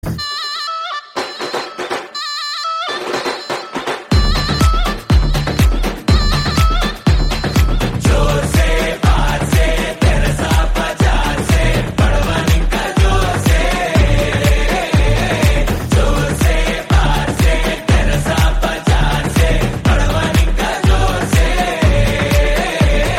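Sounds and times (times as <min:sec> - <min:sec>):
ringtone: 0:00.1 - 0:23.1.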